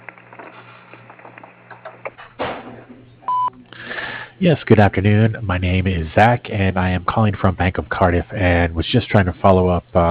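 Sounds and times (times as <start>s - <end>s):
voicemail recording beep: 3.3s - 3.6s
speech: 4.4s - 10.0s.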